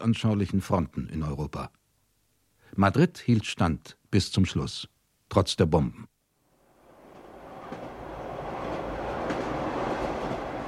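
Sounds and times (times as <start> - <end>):
speech: 0.0 - 1.8, 2.7 - 6.1
train rolling along rails through La Mancha in Spain: 6.6 - 10.6.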